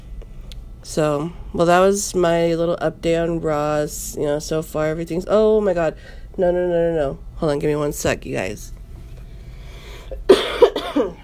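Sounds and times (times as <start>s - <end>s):
speech: 0.8s - 8.8s
harsh coughs: 10.1s - 11.2s.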